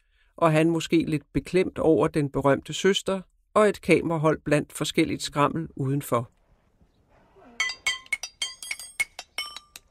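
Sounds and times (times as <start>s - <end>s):
speech: 0.4s - 6.4s
rusty metal pipes struck against each other outside a farm: 7.5s - 9.9s.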